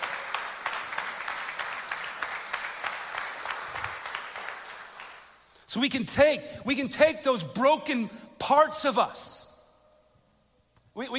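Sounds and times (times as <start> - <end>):
audience applause: 0.0 - 5.3
speech: 5.7 - 9.4, 11.0 - 11.1.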